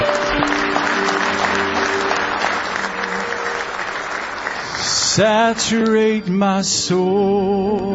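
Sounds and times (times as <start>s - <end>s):
audience clapping hands in praise: 0.0s - 5.7s
sustained organ or keyboard tones: 0.0s - 7.9s
speech: 5.2s - 7.9s.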